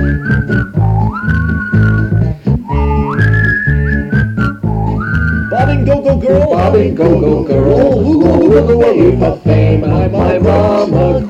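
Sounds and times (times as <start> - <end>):
person whistling a tune: 0.0 - 6.0
steady rhythmic low backing beat: 0.0 - 11.2
speech: 6.3 - 11.2.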